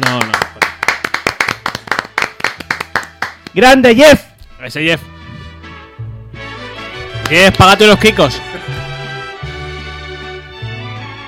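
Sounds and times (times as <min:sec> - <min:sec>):
sharp hand claps: 0:00.0 - 0:03.7, 0:07.2 - 0:08.1
speech: 0:03.6 - 0:05.2, 0:07.3 - 0:08.7.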